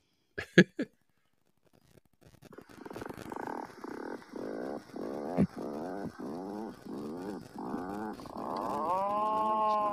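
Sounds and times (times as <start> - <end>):
Atlantic puffin call played back from a bird-identification app: 2.6 - 9.9.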